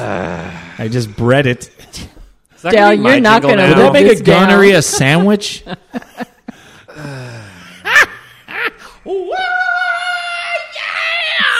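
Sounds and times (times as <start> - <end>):
speech: 0.0 - 6.1
laughter: 3.8 - 9.0
person giving a rebel yell: 9.1 - 11.5.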